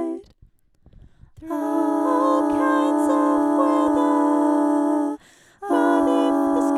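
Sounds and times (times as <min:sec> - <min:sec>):
all voices: 0:01.4 - 0:06.7.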